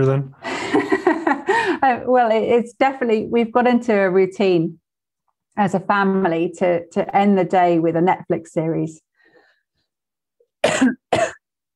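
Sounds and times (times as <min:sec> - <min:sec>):
speech: 0:00.0 - 0:00.9, 0:01.8 - 0:04.8, 0:05.6 - 0:09.1, 0:10.8 - 0:11.2
person coughing: 0:10.6 - 0:11.4.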